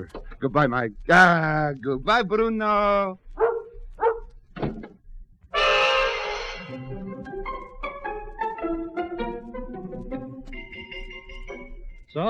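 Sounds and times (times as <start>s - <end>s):
speech: 0.0s - 3.2s
tonal music: 0.0s - 12.2s
large Alsatian barking: 3.3s - 4.3s
sudden loud crash: 5.6s - 6.8s.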